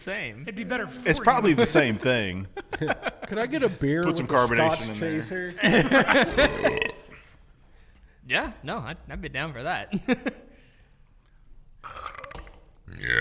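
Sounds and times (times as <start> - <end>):
speech: 0.0 - 7.0, 8.3 - 10.5, 12.9 - 13.1
laughter: 1.2 - 6.9, 9.9 - 10.6
burping: 6.2 - 7.4, 11.8 - 13.1.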